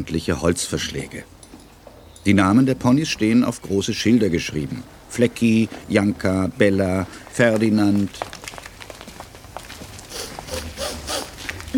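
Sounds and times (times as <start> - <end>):
speech: 0.0 - 1.4, 2.2 - 8.3
person sniffing loudly, smelling hay, straw, horses and leather in a pony stable: 10.1 - 11.6.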